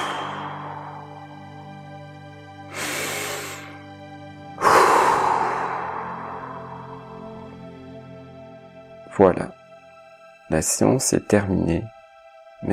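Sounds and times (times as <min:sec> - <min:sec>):
quick forceful exhalation through the mouth in a breathing exercise: 0:00.0 - 0:01.6, 0:04.6 - 0:07.4
breath drawn in through the nose in a breathing exercise: 0:00.0 - 0:01.7, 0:02.7 - 0:03.8, 0:04.6 - 0:07.6
soft steady sustained tone: 0:00.0 - 0:09.0
speech: 0:09.2 - 0:09.6, 0:10.5 - 0:12.0.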